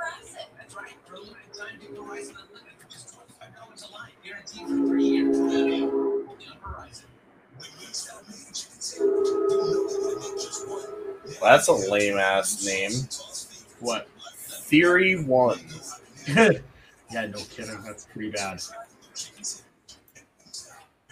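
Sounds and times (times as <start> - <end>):
passing train horn blasts: 4.6 - 6.3, 9.0 - 11.5
speech: 11.4 - 14.1, 14.7 - 19.6
laughter: 16.2 - 16.6.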